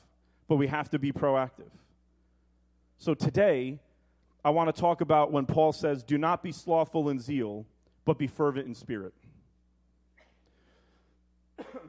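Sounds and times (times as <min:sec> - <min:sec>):
speech: 0:00.5 - 0:01.8, 0:03.0 - 0:03.8, 0:04.4 - 0:09.3
sharp cough: 0:10.2 - 0:10.5, 0:11.6 - 0:11.8.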